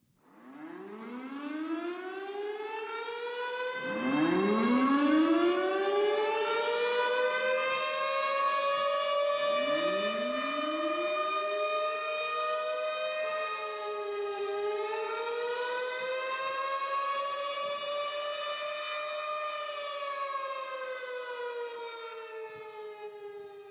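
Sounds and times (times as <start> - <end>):
outdoor tornado warning civil defense siren wailing: 0.3 - 23.6.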